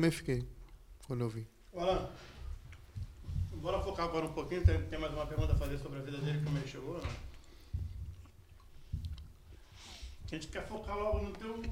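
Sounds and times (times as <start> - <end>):
speech: 0.0 - 2.3, 3.6 - 7.3, 10.3 - 11.7
person chewing food: 2.5 - 3.3, 7.2 - 10.3.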